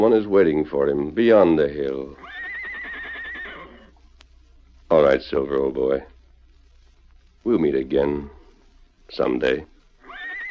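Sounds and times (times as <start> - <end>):
speech: 0.0 - 2.2, 4.9 - 6.1, 7.4 - 8.4, 9.1 - 9.7
horse neighing: 2.2 - 3.9, 10.0 - 10.4.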